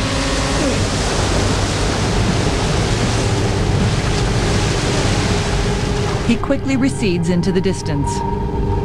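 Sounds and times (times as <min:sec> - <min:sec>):
white foamy river water rushing: 0:00.0 - 0:06.4
speech: 0:06.3 - 0:08.7.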